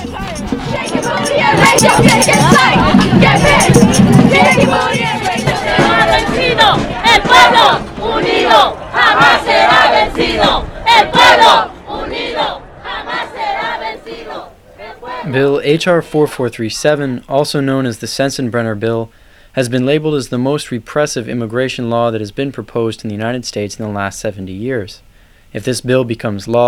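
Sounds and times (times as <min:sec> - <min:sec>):
crowd of immigrants and supporters shouting at a street demonstration in New York: 0:00.0 - 0:16.3
speech: 0:01.7 - 0:02.5, 0:15.4 - 0:26.6.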